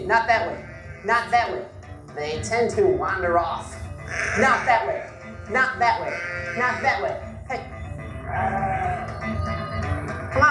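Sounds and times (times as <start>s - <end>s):
speech: 0.0s - 8.6s
single sheep bleating: 0.3s - 1.5s, 4.0s - 7.3s, 8.1s - 10.3s.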